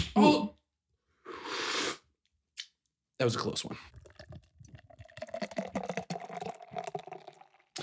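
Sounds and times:
speech: 0.2s - 0.6s, 3.2s - 4.0s
Guinness beer being poured into a glass: 3.9s - 7.8s.

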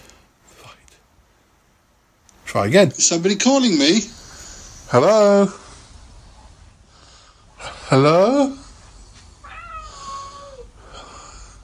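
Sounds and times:
quiet hum: 0.0s - 11.6s
speech: 2.5s - 4.2s, 4.9s - 5.6s, 7.9s - 8.6s
cat meowing: 9.4s - 10.7s.

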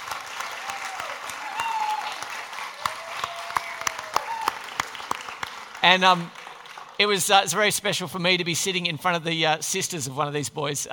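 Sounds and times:
audience applauding the cast after a performance: 0.0s - 7.6s
speech: 5.9s - 6.4s, 7.0s - 10.9s.

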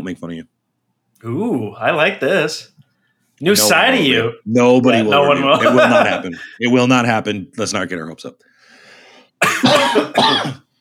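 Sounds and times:
speech: 0.0s - 0.6s, 1.2s - 2.8s, 3.4s - 8.5s, 9.4s - 10.6s
laughter: 5.1s - 6.6s
two people coughing at once: 9.4s - 10.7s.

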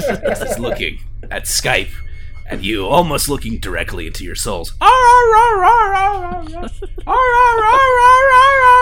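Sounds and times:
laughter: 0.0s - 1.5s, 6.0s - 8.0s
speech: 0.1s - 8.7s
dog whimpering in a wolf-like whine: 4.8s - 8.7s.

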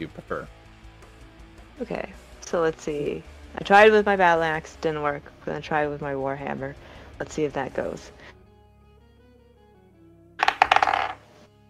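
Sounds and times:
speech: 1.8s - 8.4s
dice tumbling across a hard surface: 10.4s - 11.3s.

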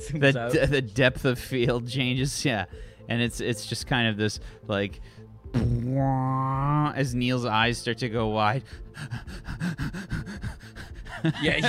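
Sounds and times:
speech: 0.1s - 10.3s, 11.2s - 11.6s
person imitating rapid heavy panicked breathing: 8.9s - 11.4s
laughter: 11.1s - 11.6s.

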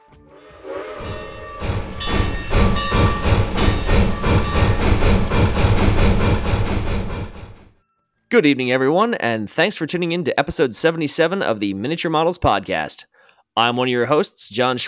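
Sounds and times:
train chugging: 0.3s - 7.8s
hissing steam: 0.5s - 7.6s
speech: 8.4s - 14.8s.

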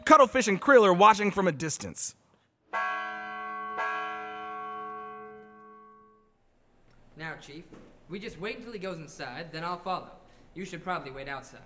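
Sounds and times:
speech: 0.1s - 2.2s, 7.3s - 11.6s
front door bell of an old dilapidated theater ringing: 2.7s - 6.3s.

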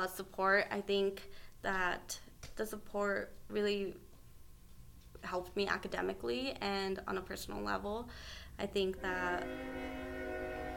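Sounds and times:
speech: 0.0s - 4.1s, 5.2s - 10.0s
train horn blaring: 9.0s - 10.7s.

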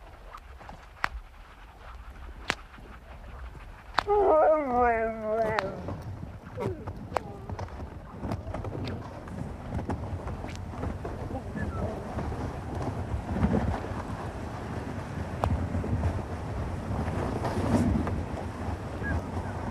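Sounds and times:
steady wind rumble: 0.0s - 19.7s
sled dogs pulling dog sledges barking and yelping outdoors: 4.0s - 7.7s.

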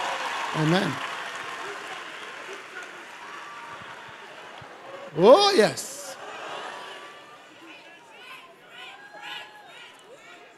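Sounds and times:
church audience clapping: 0.0s - 5.5s
speech: 0.6s - 1.1s, 5.2s - 5.9s.

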